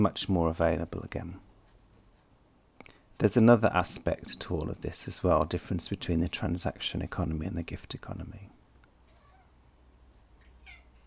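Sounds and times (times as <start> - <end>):
speech: 0.0 - 1.5, 3.2 - 8.6
cat meowing: 9.1 - 9.6, 10.5 - 11.0.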